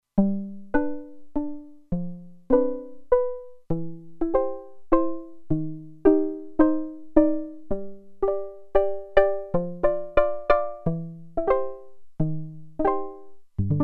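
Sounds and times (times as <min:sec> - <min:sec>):
pizzicato on a Roland Alpha Juno-2: 0:00.2 - 0:13.8.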